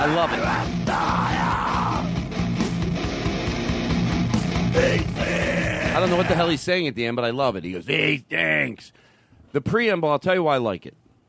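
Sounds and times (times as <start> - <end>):
speech: 0.0 - 1.4, 6.0 - 11.0
harsh shouted vocals in a screaming music jingle: 0.0 - 2.2, 4.6 - 6.6
dense distorted instruments: 0.0 - 6.6.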